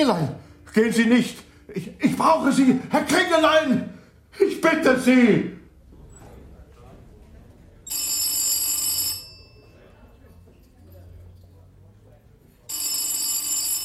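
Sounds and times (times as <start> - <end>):
speech: 0.0 - 5.6
faint low murmur: 5.7 - 7.9, 9.3 - 12.7
old-fashioned telephone bell ringing: 7.9 - 9.9, 12.7 - 13.8.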